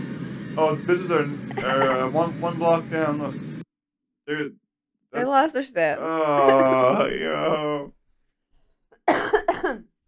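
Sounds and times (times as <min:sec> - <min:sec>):
speech: 0:00.6 - 0:03.5, 0:04.3 - 0:08.0
person coughing: 0:01.5 - 0:02.0, 0:09.0 - 0:09.9
laughter: 0:01.5 - 0:02.4, 0:06.1 - 0:07.8.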